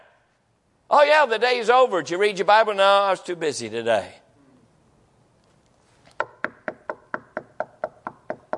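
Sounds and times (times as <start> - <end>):
speech: 0.9 - 4.2
sharp knocks with a woody ring: 6.2 - 8.5.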